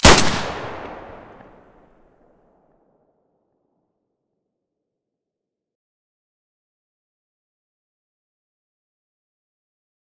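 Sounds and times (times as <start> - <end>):
M9A3 pistol gunshot: 0.0 - 1.6.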